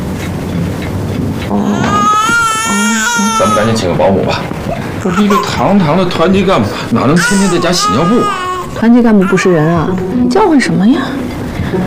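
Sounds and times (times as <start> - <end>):
rumbling noisy background: 0.0 - 11.8
speech: 1.5 - 1.9, 3.0 - 11.8
baby crying: 1.5 - 4.0, 4.6 - 10.0.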